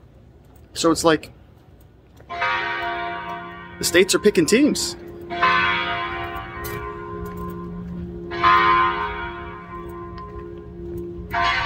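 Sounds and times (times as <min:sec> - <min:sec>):
speech: 0:00.7 - 0:01.4, 0:03.8 - 0:05.1
church bell ringing near downtown Phoenix: 0:02.3 - 0:11.6.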